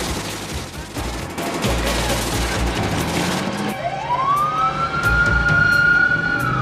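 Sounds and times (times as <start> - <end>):
heavy city traffic noise: 0.0 - 6.6
sirens of an ambulance and a fire engine speeding through city traffic: 3.5 - 6.6.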